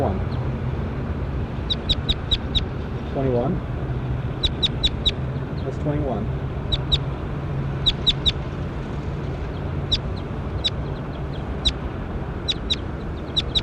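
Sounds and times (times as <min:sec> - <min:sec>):
steady dense hiss and rumble: 0:00.0 - 0:13.6
bird calling with sharp high chirps: 0:01.6 - 0:02.7, 0:04.3 - 0:05.7, 0:06.7 - 0:07.1, 0:07.8 - 0:08.4, 0:09.5 - 0:11.8, 0:12.4 - 0:13.6
speech: 0:03.2 - 0:03.7, 0:05.8 - 0:06.4.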